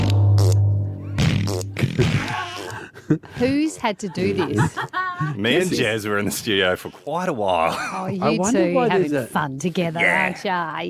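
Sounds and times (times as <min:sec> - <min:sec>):
loud low buzzing fart puffing out talcum powder: 0:00.0 - 0:02.8
speech: 0:02.0 - 0:02.4, 0:03.1 - 0:10.8
laughter: 0:02.6 - 0:06.5, 0:07.4 - 0:08.6.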